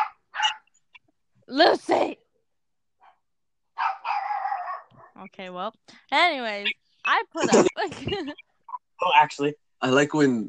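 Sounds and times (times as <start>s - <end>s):
dog barking: 0.0s - 0.7s, 3.0s - 5.2s
dog giving a brief quiet yip: 0.0s - 0.9s, 3.8s - 5.2s
speech: 1.5s - 2.2s, 5.2s - 10.4s.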